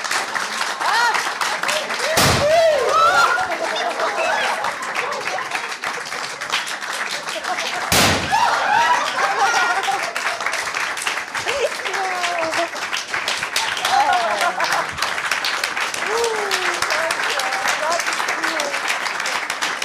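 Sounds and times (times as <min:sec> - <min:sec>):
large crowd applauding and cheering: 0:00.0 - 0:19.8
laughter: 0:00.3 - 0:12.9, 0:13.5 - 0:15.2, 0:16.0 - 0:17.4
confetti cannon blast: 0:02.1 - 0:02.7, 0:07.9 - 0:08.5.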